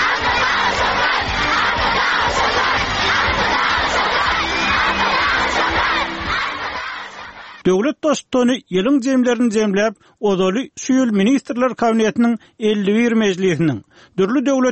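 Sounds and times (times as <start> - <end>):
large crowd shouting and cheering at a government assembly in Turkmenistan: 0.0 - 7.8
speech: 7.7 - 14.6.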